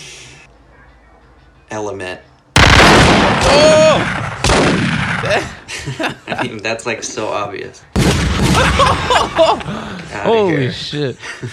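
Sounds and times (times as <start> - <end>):
speech: 1.7 - 2.3, 3.5 - 4.3, 5.3 - 8.0, 8.6 - 11.5
loud dense gunfire: 2.6 - 5.4, 8.0 - 9.1
laughter: 5.3 - 7.3, 8.4 - 11.5.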